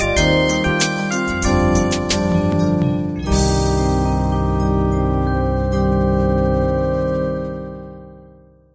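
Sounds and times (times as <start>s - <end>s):
sixteen-beat soul music ending: 0.1s - 7.9s.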